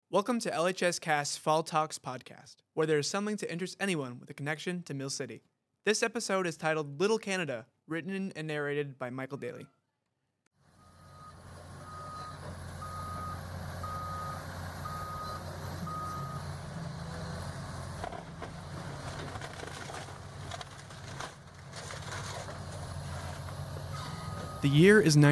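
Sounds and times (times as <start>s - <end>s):
speech: 0.1s - 9.8s, 24.6s - 25.3s
reversing alarm beeping: 10.8s - 16.6s, 23.9s - 25.0s
heavy demolition machinery rumbling: 10.8s - 25.3s
wood crunching and smashing: 18.0s - 24.0s.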